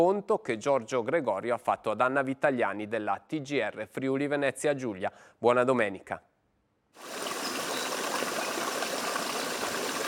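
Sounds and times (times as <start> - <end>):
speech: 0.0 - 6.3
mountain stream rushing over rocks: 7.0 - 10.0.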